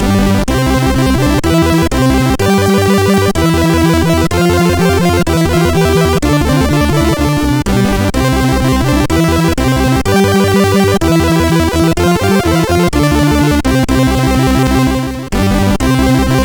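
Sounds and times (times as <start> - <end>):
crack intro chiptune music on a MOS6581R4 SID chip: 0.0 - 16.4.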